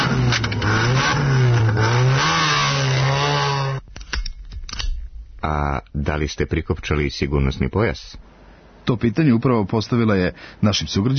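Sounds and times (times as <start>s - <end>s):
car engine starting and revving after key turned in ignition: 0.0s - 3.8s
speech: 6.0s - 11.1s.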